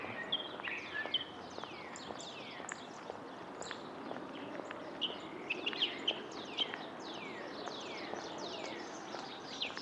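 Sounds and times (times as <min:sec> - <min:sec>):
many different birds singing and chirping in springtime in Houston Texas: 0:00.0 - 0:09.8.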